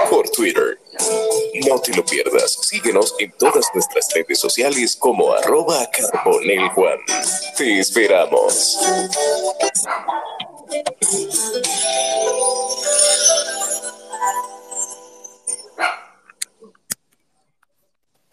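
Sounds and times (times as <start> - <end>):
speech: 0.4 - 13.6, 15.8 - 16.0
small dog barking and yapping: 3.4 - 4.0, 6.0 - 6.8, 15.8 - 16.1.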